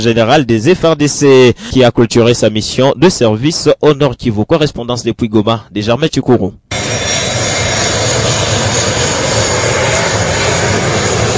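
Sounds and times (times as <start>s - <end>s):
speech: 0.0s - 6.8s
military attack fighter jet flying over Goma, Sake and Nyiragongo: 6.7s - 11.3s.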